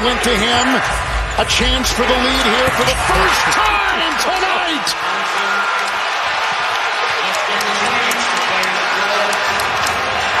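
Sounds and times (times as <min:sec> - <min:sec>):
speech: 0:00.0 - 0:06.0, 0:07.5 - 0:08.4
visiting fans cheering in a basketball arena: 0:00.0 - 0:10.3
shouts: 0:02.4 - 0:10.3
clapping: 0:07.1 - 0:10.3.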